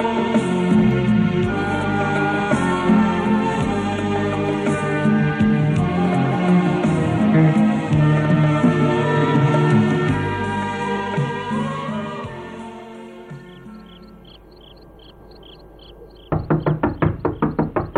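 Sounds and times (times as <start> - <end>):
sustained tonal music: 0.0 - 16.0
loud quick knocks on a door: 16.2 - 17.9.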